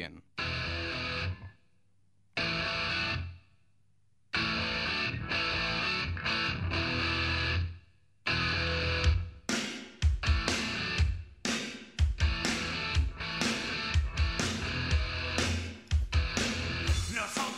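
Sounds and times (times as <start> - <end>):
loud distorted guitar chords in a hard rock song: 0.4 - 1.5, 2.4 - 3.3, 4.4 - 7.6, 8.3 - 9.2, 10.2 - 11.1, 12.2 - 17.5
pounding drums: 9.5 - 17.5
hard rock band playing: 10.1 - 11.1, 12.2 - 17.5.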